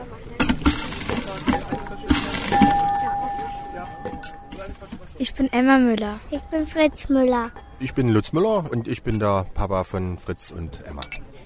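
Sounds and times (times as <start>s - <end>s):
drinking glasses clinking as they are cleaned and filled: 0.4s - 4.9s, 6.3s - 11.4s
faint ringing tone: 1.7s - 4.9s
speech: 5.4s - 11.4s.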